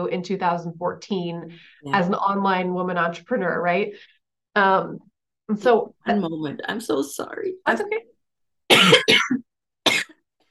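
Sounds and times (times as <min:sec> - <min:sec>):
speech: 0:00.0 - 0:08.1, 0:08.7 - 0:10.0
person coughing from a tickle in the throat: 0:08.7 - 0:10.2.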